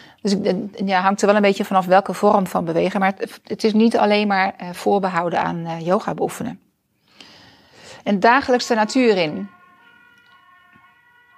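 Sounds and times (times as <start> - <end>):
speech: 0.2 - 6.7, 8.0 - 9.6
ambulance siren wailing near hospital: 8.2 - 11.3.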